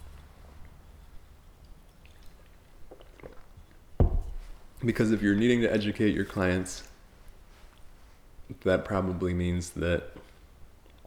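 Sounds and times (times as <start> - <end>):
person sipping a coffee drink: 2.0 - 3.9
wet slurping and swallowing: 2.0 - 3.9
bump: 4.0 - 4.6
speech: 4.8 - 6.9, 8.6 - 10.2.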